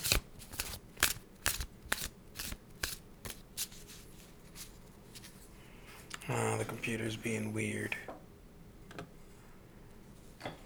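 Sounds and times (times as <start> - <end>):
Thoth tarot deck being shuffled: 0.0 - 5.4
speech: 6.3 - 8.1.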